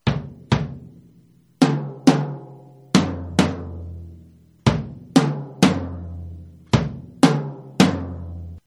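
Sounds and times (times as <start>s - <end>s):
birch drum kit: 0.0s - 8.6s.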